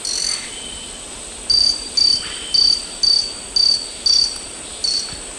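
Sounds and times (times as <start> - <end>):
Myiornis ecaudatus calls or song in the Eastern Lowlands of South America: 0.1 - 5.2.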